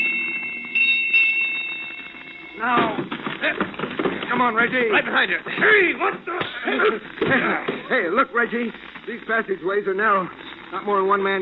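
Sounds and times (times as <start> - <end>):
ship's bell striking eight bells: 0.0 - 2.9
speech: 2.6 - 3.6, 4.4 - 11.4.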